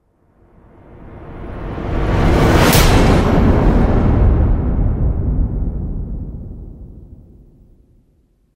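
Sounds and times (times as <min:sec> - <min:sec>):
low rising suspense rumble: 0:00.6 - 0:07.9.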